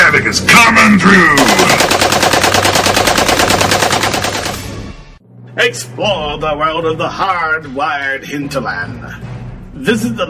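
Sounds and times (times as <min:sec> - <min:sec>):
speech: 0:00.2 - 0:01.8, 0:05.6 - 0:10.2
.50 caliber machine gun firing from a roof turret: 0:01.4 - 0:05.0.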